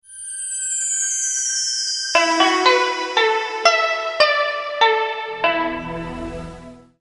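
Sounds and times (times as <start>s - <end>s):
Asian Chinese style rising alert tone: 2.2s - 6.7s.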